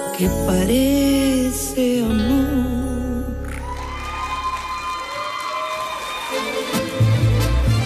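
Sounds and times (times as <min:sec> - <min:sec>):
speech: 0:00.2 - 0:03.0
live audience applause and cheering: 0:03.4 - 0:07.8.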